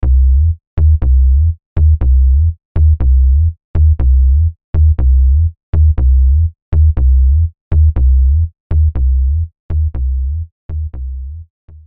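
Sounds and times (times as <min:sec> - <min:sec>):
initial synth bass patch: 0:00.0 - 0:11.8.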